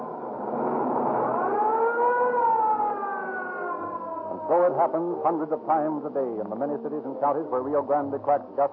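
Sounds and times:
ambulance siren wailing on its way to an emergency call: 0:00.6 - 0:05.8
speech: 0:04.6 - 0:08.7.

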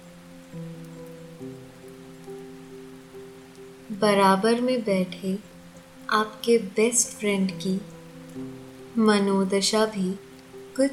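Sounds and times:
raindrops pattering on a hard floor outside: 0:00.0 - 0:10.9
speech: 0:04.0 - 0:05.5, 0:06.1 - 0:10.2.

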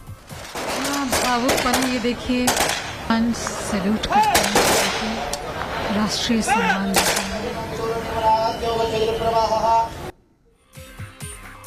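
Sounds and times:
crowd noise: 0:00.0 - 0:10.4
rifle volleys of a ceremonial gun salute: 0:00.3 - 0:05.9, 0:07.0 - 0:07.4
speech: 0:01.3 - 0:05.2, 0:05.9 - 0:07.2.

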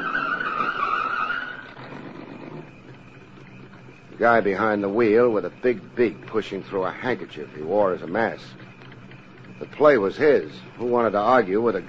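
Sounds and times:
car tires screeching while skidding to a stop: 0:00.0 - 0:02.8
speech: 0:04.2 - 0:08.6, 0:09.6 - 0:11.8.

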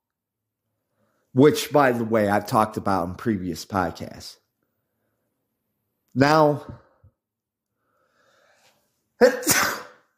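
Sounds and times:
speech: 0:01.3 - 0:04.4, 0:06.1 - 0:06.8, 0:09.2 - 0:09.7
person coughing: 0:09.2 - 0:10.1.

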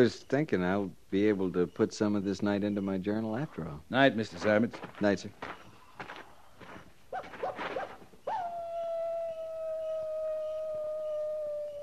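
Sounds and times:
speech: 0:00.0 - 0:05.6
rustling and shuffling: 0:04.2 - 0:08.3
coyote howling at night: 0:07.1 - 0:11.8.

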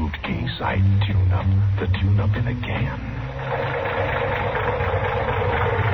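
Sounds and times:
speech: 0:00.1 - 0:03.8
rough car engine with a sticking valve idling: 0:02.8 - 0:05.8.

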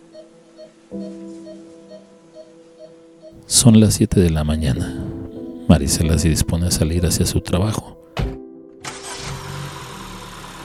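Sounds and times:
speech: 0:00.9 - 0:01.2, 0:03.5 - 0:05.0, 0:05.8 - 0:08.0
car engine cranking and idling: 0:08.8 - 0:10.6.

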